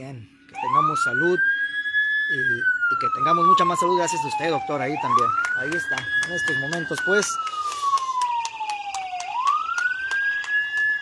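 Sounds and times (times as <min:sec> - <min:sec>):
speech: 0:00.0 - 0:01.7, 0:02.3 - 0:07.9
ambulance siren wailing: 0:00.0 - 0:10.9
rhythmic applause bidding farewell to a departing friend: 0:03.8 - 0:10.9.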